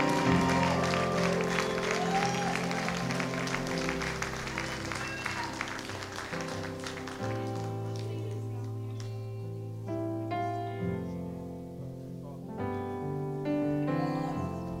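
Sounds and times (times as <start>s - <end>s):
crowd clapping during an altar call: 0.0s - 9.2s
sustained music with low held tones: 0.0s - 14.7s.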